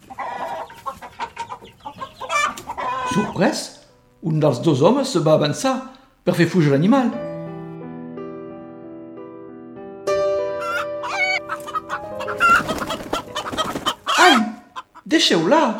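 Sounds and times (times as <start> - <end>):
black hen clucking: 0.0 - 3.5, 10.6 - 15.7
speech: 3.1 - 7.2, 15.2 - 15.7.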